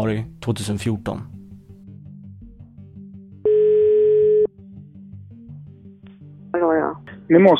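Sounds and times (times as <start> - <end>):
speech: 0.0 - 1.4, 7.3 - 7.5
telephone ringback tone on a police wiretap recording: 3.5 - 4.5.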